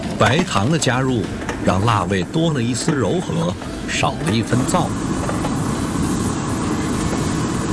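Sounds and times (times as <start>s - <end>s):
speech: 0.2s - 5.1s
crispy chicken pieces stir-frying over high heat in a wok with Sichuan pepper and dried chilies: 2.6s - 7.7s.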